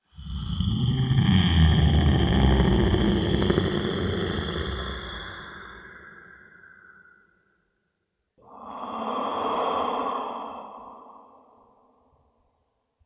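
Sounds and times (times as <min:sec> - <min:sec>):
giant snoring: 0:00.2 - 0:06.4, 0:08.4 - 0:11.8.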